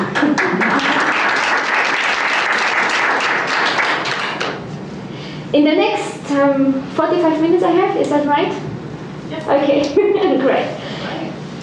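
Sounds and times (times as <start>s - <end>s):
laughter: 0.0s - 1.2s, 9.3s - 11.3s
audience applause: 0.0s - 4.6s
speech: 6.5s - 8.7s, 9.3s - 11.0s.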